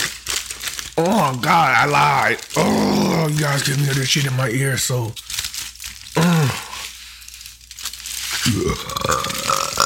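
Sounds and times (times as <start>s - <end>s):
aluminum foil crinkling: 0.0s - 9.8s
speech: 1.0s - 5.4s
person burping: 2.6s - 3.4s, 6.2s - 6.7s, 8.4s - 9.8s.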